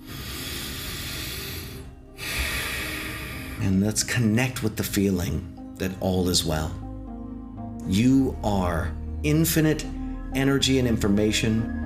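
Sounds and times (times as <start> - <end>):
long slow deep breath during a guided meditation: 0.0 - 3.7
speech: 3.6 - 6.8, 7.9 - 11.8.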